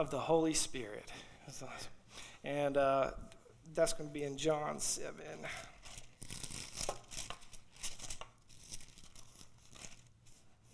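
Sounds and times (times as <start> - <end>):
speech: 0.0 - 5.8
Bible paper pages rustling and crinkling as they are turned: 5.7 - 10.7.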